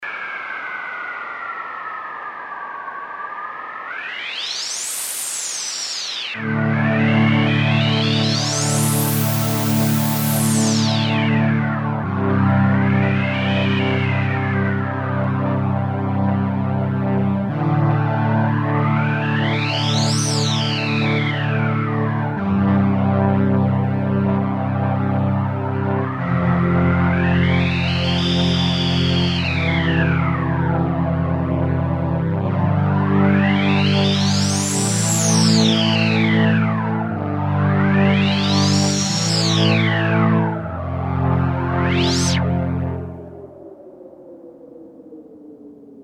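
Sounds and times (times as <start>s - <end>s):
desert pad on Kawai sx240 synthesizer: 0.0s - 46.0s.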